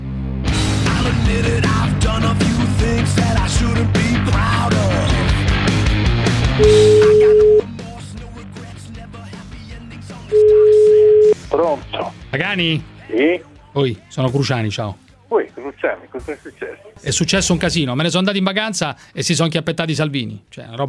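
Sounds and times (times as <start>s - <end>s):
music: 0.0s - 20.8s
speech: 1.3s - 5.2s, 6.6s - 6.9s, 11.6s - 20.8s
outgoing phone call ringback tone: 6.6s - 7.7s, 10.3s - 11.4s.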